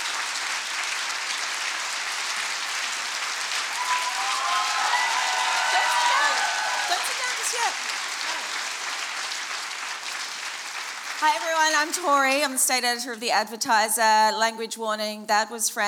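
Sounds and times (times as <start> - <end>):
large audience in a room clapping after a speech: 0.0 - 12.1
whoops and cheers from an audience: 3.7 - 8.5
speech: 11.2 - 15.8.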